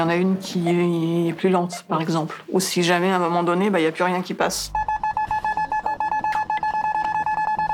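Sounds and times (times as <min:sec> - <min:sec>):
speech: 0:00.0 - 0:04.9
supermarket checkout barcode scanner beeps: 0:04.7 - 0:07.7.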